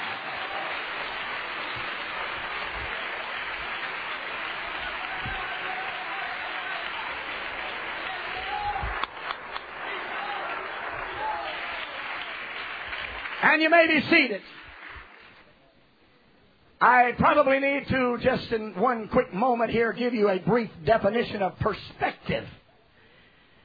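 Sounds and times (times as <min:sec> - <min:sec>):
large group clapping: 0:00.0 - 0:15.5
speech: 0:13.5 - 0:14.6, 0:16.9 - 0:22.6.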